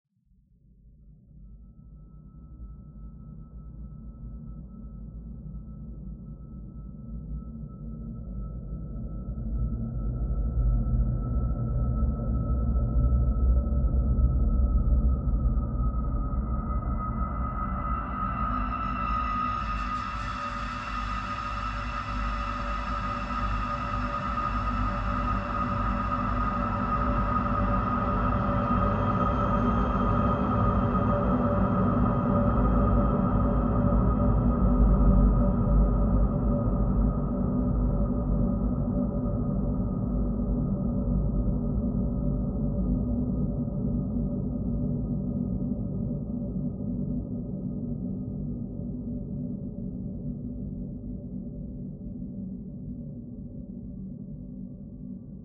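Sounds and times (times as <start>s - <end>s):
dark ambient synth pad: 8.8s - 49.9s.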